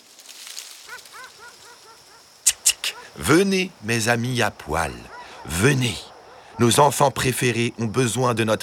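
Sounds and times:
dog giving high whiny yips: 0.9s - 2.2s, 5.0s - 5.5s
dog barking sharply: 0.9s - 3.2s, 4.7s - 7.1s
speech: 1.2s - 8.6s.

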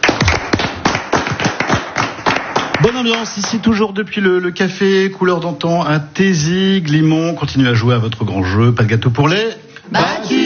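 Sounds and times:
small group of contestants applauding: 0.0s - 3.9s
speech: 3.0s - 10.4s.

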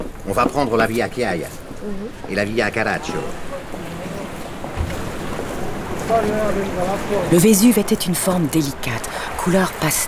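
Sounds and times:
wind gusts whipping the sea at Naples: 0.0s - 10.0s
speech: 0.3s - 3.5s, 6.1s - 10.0s
rough sea waves at Naples: 2.0s - 10.0s.

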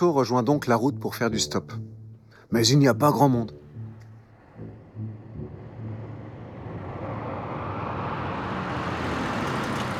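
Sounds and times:
speech: 0.0s - 3.6s
large Cadillac convertible engine rumbling: 3.0s - 9.9s
broad rushing whoosh of approaching Cadillac convertible: 4.3s - 9.9s.

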